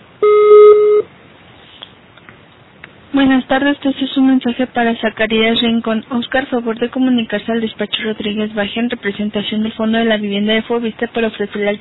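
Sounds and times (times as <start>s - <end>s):
electronic voicemail beep tone: 0.2s - 1.1s
speech: 3.2s - 11.7s.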